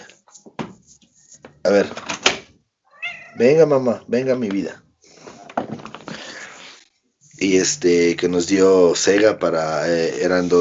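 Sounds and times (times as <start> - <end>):
speech: 1.7 - 2.1, 3.4 - 4.8, 7.4 - 10.6
female cat meowing at a door to be let in: 2.9 - 3.6.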